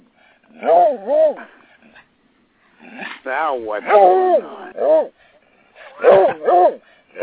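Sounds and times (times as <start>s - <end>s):
dog barking and yelping: 0.5s - 2.1s, 2.9s - 5.2s, 5.8s - 7.2s
speech: 0.6s - 1.6s, 2.9s - 5.2s, 6.0s - 7.2s.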